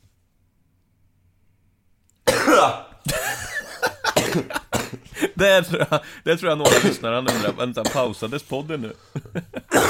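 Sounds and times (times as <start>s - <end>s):
person coughing while ill: 2.2s - 5.4s, 6.6s - 8.1s, 9.6s - 9.8s
speech: 2.6s - 2.8s, 5.4s - 9.8s.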